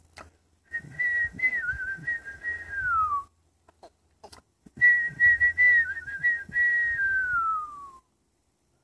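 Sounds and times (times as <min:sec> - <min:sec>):
person whistling an imitation of a bird singing: 0:00.7 - 0:03.4, 0:04.8 - 0:08.1.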